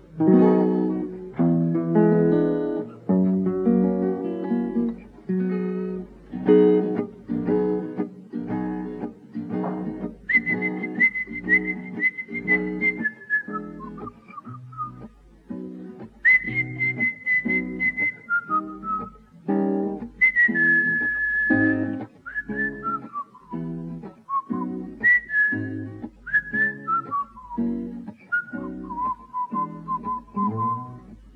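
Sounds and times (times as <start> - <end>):
slow blues accompaniment with a thumping beat: 0.0 - 31.2
person whistling a melody in a blues song: 10.3 - 15.1, 16.2 - 19.2, 20.2 - 31.1.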